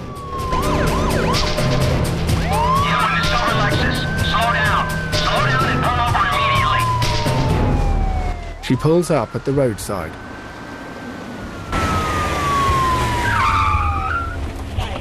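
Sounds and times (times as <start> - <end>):
police car engine and road noise: 0.0 - 14.9
police squad car siren wailing during a chase: 0.0 - 14.9
speech: 8.7 - 10.3.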